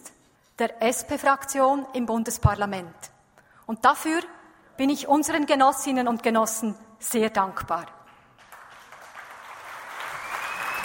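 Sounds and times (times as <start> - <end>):
speech: 0.6 - 3.1, 3.7 - 8.0
large crowd of delegates applauding at a party assembly: 8.4 - 10.8
sharp high whistle: 10.1 - 10.8.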